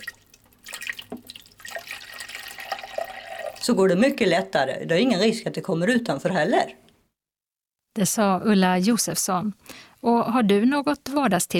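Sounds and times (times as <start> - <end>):
water splashes in a coffee maker: 0.0 - 3.6
water poured through a funnel into a coffee maker: 0.0 - 4.2
speech: 3.7 - 6.8, 8.0 - 11.5.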